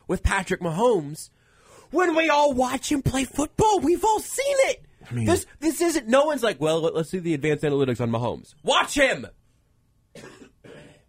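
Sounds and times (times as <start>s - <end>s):
speech: 0.1s - 9.4s
throat clearing: 10.1s - 11.0s.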